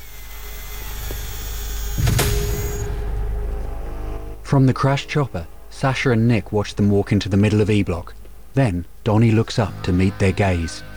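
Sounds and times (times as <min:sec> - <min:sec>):
spotlight motor whirring into life and spinning into position: 0:00.0 - 0:02.9
speech: 0:04.5 - 0:10.9.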